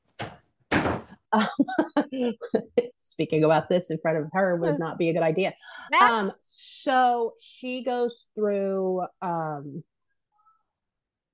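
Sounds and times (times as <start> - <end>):
heavy door thudding shut: 0.2 - 1.1
speech: 1.3 - 9.9.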